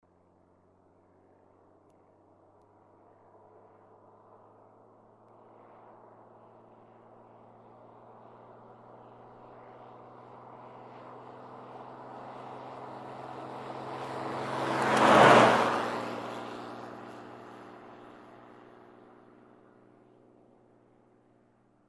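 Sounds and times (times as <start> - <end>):
car passing by: 7.4 - 19.0.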